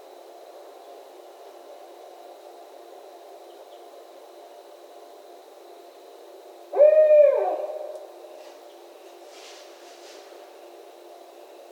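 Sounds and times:
barred owl hooting: 6.7 - 8.1.

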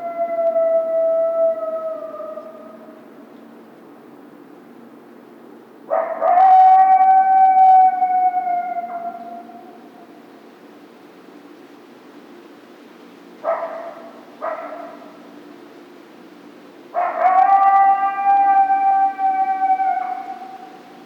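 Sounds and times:
coyote giving long steady tonal howls: 0.0 - 3.0, 5.9 - 10.1, 16.9 - 21.0.

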